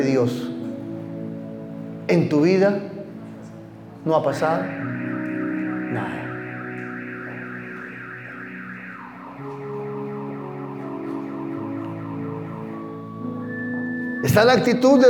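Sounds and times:
speech: 0:00.0 - 0:00.6, 0:02.1 - 0:02.9, 0:04.0 - 0:04.8, 0:05.9 - 0:06.2, 0:14.2 - 0:15.0
car alarm cycling through warbling and wailing tones: 0:04.3 - 0:15.0.

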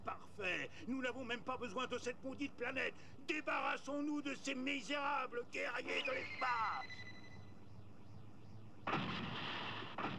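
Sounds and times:
speech: 0:00.4 - 0:07.1
booming fireball blast explosion: 0:08.9 - 0:10.1.

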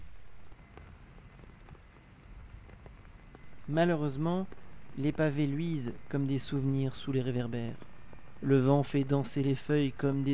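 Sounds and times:
light rain falling in a city park on an October day: 0:03.5 - 0:10.3
speech: 0:03.7 - 0:10.3.

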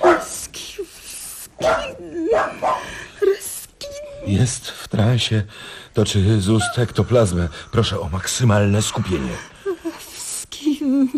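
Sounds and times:
poodle barking and yipping at a séance: 0:00.0 - 0:00.4, 0:01.6 - 0:02.9
speech: 0:04.3 - 0:09.6.

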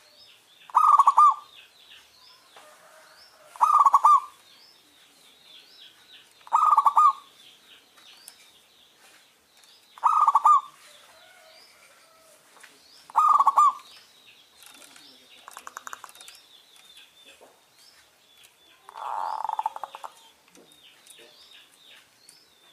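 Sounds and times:
small birds chirping and twittering softly in the background: 0:00.0 - 0:22.7
zebra dove delivering bubbling coo phrases: 0:00.7 - 0:01.5, 0:03.5 - 0:04.4, 0:06.4 - 0:07.3, 0:10.0 - 0:10.8, 0:13.1 - 0:13.9, 0:18.9 - 0:20.3.

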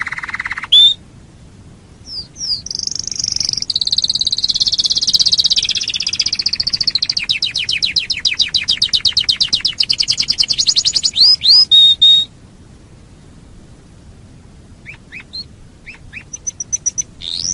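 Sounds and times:
canary delivering a long loud trill: 0:00.0 - 0:01.0, 0:02.0 - 0:12.3, 0:14.8 - 0:17.5.

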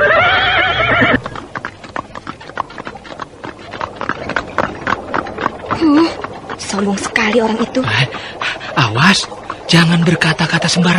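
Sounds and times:
horse whinnying: 0:00.0 - 0:01.4
hooves clopping of a horse-drawn carriage setting off: 0:00.0 - 0:10.9
speech: 0:06.8 - 0:10.9.

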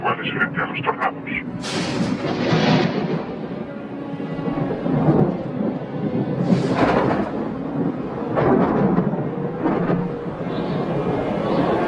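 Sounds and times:
speech: 0:00.2 - 0:02.6
thunder rolling during a severe electrical storm: 0:01.7 - 0:03.7, 0:04.4 - 0:11.7.

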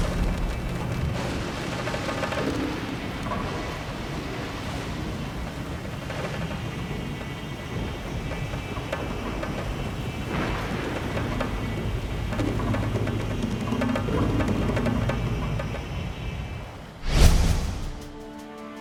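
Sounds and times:
thunderlike boom in a storm at sea: 0:00.0 - 0:02.7, 0:17.0 - 0:18.3
storm at sea roar of wind and water tossing a ship: 0:00.0 - 0:18.4.

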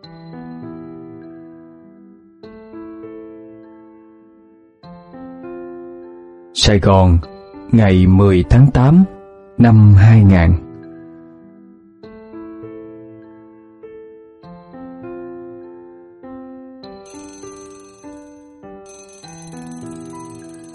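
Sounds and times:
speech: 0:06.6 - 0:10.6
alarm clock ringing with a repeating bell-like chime melody: 0:17.0 - 0:20.7.

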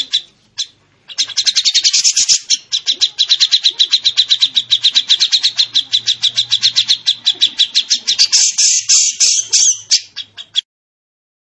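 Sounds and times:
training bird song with sharp high chirped notes and buzzy rattle: 0:00.0 - 0:10.6.

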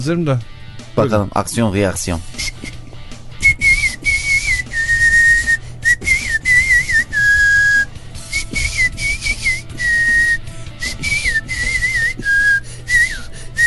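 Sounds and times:
speech: 0:00.0 - 0:02.8
person whistling in the horizontal whistle style: 0:02.4 - 0:02.8, 0:03.4 - 0:13.6.

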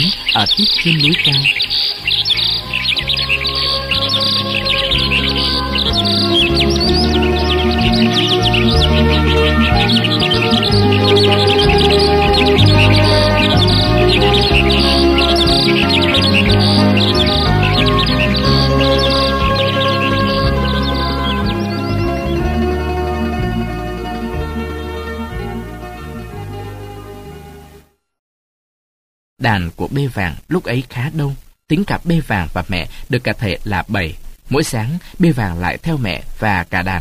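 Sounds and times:
birds singing around a house at the forest's edge before sunrise: 0:00.0 - 0:27.8
speech: 0:00.1 - 0:01.9, 0:29.4 - 0:36.9.

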